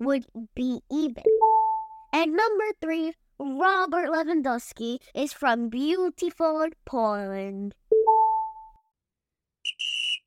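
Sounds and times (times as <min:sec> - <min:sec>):
speech: 0:00.0 - 0:07.8
referee's whistle blowing to end a soccer match: 0:09.7 - 0:10.2.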